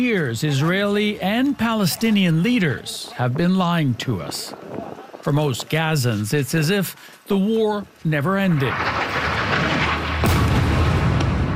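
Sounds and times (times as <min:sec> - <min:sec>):
speech: 0:00.0 - 0:09.8
airstrike explosion on a mosque and refugee camp in Gaza: 0:08.6 - 0:11.5.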